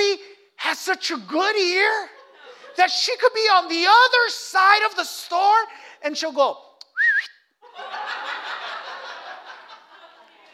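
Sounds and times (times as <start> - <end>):
speech: 0.7 - 2.2, 2.8 - 7.9
person whistling a warbling call: 6.8 - 7.5
laughter and snickering: 7.6 - 10.5.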